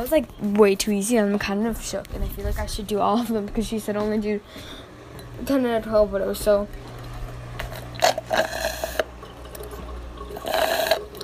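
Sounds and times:
speech: 0.0 - 4.8, 5.4 - 6.9
person gulping a glass of water: 6.7 - 11.2.

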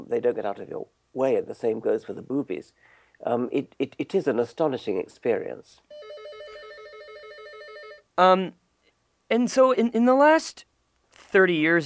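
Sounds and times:
speech: 0.1 - 6.1, 8.2 - 8.6, 9.3 - 11.8
studio telephone ringing with warbling electronic trill: 5.9 - 8.1.

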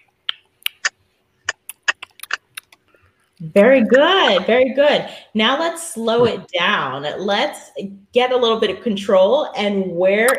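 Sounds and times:
tongue clicking: 0.0 - 0.9, 1.5 - 2.8
speech: 3.4 - 10.3.

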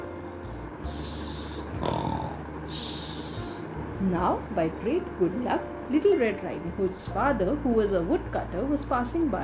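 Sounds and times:
wolf snoring loudly in a cottage: 0.9 - 3.6
speech: 4.0 - 9.4.

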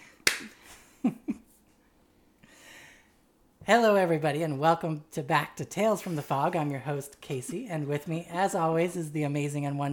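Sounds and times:
hand clap marking a new take: 0.2 - 0.6
speech: 1.0 - 1.3, 3.7 - 9.9.

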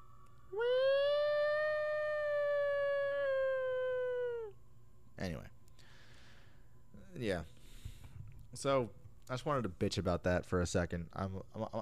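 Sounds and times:
siren wailing outside: 0.0 - 4.6
speech: 8.6 - 11.7.

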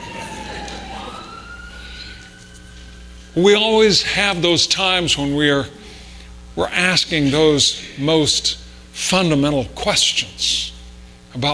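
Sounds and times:
wailing siren of a truck passing outside: 0.0 - 4.6
speech: 3.4 - 5.8, 6.6 - 10.7, 11.4 - 11.5.

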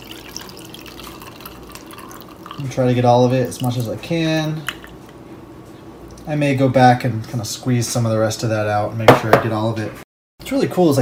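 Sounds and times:
purple liquid pouring through a tea strainer into a mason jar: 0.0 - 5.2
speech: 2.6 - 4.8, 6.3 - 11.0.

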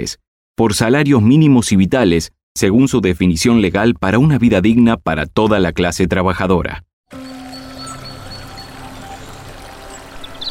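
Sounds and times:
speech: 0.0 - 7.2
bubbling stream water rushing: 7.1 - 10.4
faint bird chirps: 7.2 - 10.4.

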